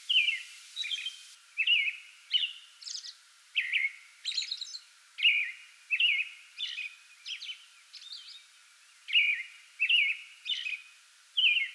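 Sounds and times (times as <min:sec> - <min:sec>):
American robin singing before dawn from a small tree in a front yard: 0:00.0 - 0:11.7.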